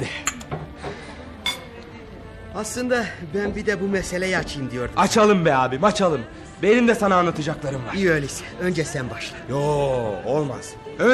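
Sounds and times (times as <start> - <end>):
drinking glasses clinking in a toast: 1.4 - 1.8
speech: 2.6 - 11.1.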